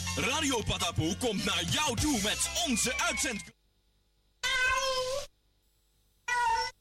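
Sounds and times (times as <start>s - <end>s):
speech: 0.2s - 3.6s
cat meowing: 4.4s - 5.3s, 6.2s - 6.8s.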